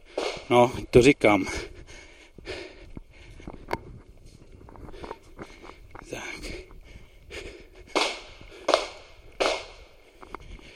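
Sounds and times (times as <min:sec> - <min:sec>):
person breathing outdoors: 0:00.0 - 0:00.5, 0:01.5 - 0:03.8, 0:04.7 - 0:10.7
footsteps outdoors: 0:00.0 - 0:10.7
gunshots from a shooting range: 0:00.1 - 0:00.8, 0:07.9 - 0:09.9
speech: 0:00.5 - 0:01.7.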